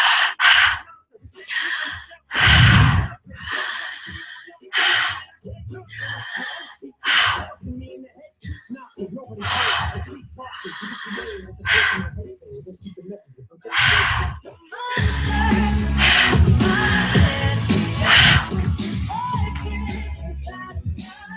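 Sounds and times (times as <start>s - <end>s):
deep guided breathing inhales and exhales: 0.0s - 7.7s, 9.4s - 12.3s, 13.7s - 19.3s.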